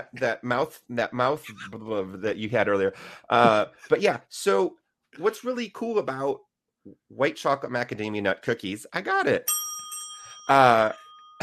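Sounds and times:
speech: 0:00.0 - 0:09.7, 0:10.5 - 0:11.4
bell ringing: 0:09.4 - 0:11.4.

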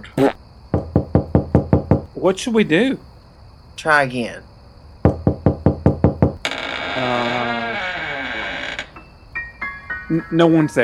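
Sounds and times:
knocking on a door: 0:00.7 - 0:02.1, 0:05.0 - 0:06.4
speech: 0:02.2 - 0:03.1, 0:03.8 - 0:04.5, 0:10.1 - 0:10.8
door creaking open: 0:05.1 - 0:09.2.

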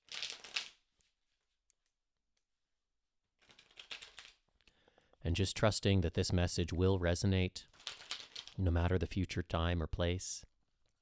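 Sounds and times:
tarot cards being riffle shuffled: 0:00.0 - 0:00.8, 0:03.4 - 0:04.5, 0:07.7 - 0:08.6
speech: 0:05.2 - 0:07.7, 0:08.6 - 0:10.5.

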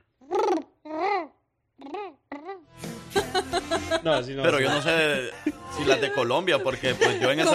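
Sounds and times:
person imitating a dove's cooing: 0:00.2 - 0:02.6
person laughing: 0:03.1 - 0:07.5
speech: 0:04.0 - 0:07.5.

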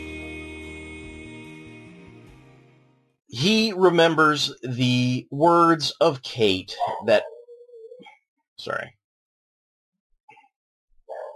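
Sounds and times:
speech: 0:03.3 - 0:07.3, 0:08.6 - 0:09.0
dog barking: 0:06.8 - 0:07.4.

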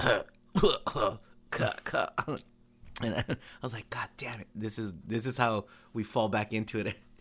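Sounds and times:
voice imitating people coughing in a movie theater: 0:00.0 - 0:03.4
speech: 0:00.0 - 0:07.1.

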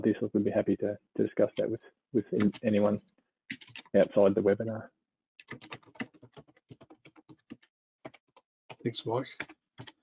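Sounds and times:
speech: 0:00.0 - 0:06.1, 0:08.8 - 0:09.9
two-handed typing on computer keyboard: 0:03.5 - 0:04.0, 0:05.4 - 0:08.8.

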